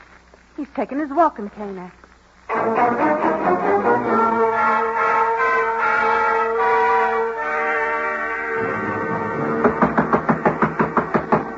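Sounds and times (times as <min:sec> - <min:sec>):
speech: 0:00.6 - 0:02.0, 0:02.6 - 0:04.0
orchestral music: 0:02.5 - 0:10.4
man climbing stairs: 0:08.6 - 0:11.5
knocking on a door: 0:08.9 - 0:11.5.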